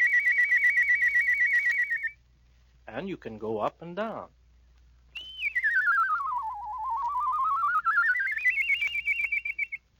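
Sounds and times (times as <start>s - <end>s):
human whistling with fast warbling trill: 0.0s - 2.2s, 5.1s - 9.8s
speech: 2.9s - 4.4s.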